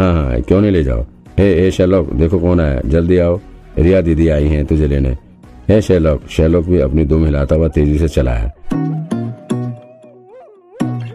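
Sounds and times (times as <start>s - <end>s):
speech: 0.0s - 9.0s
dog whining yelp: 7.5s - 11.1s.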